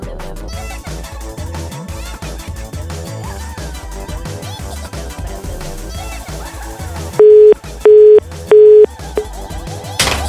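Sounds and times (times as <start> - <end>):
telephone busy signal beeps: 7.2 - 8.9.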